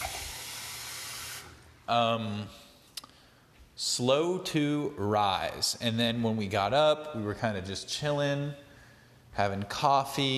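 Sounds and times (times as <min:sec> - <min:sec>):
water running: 0:00.0 - 0:01.6
speech: 0:01.9 - 0:02.7, 0:03.8 - 0:08.6, 0:09.4 - 0:10.3.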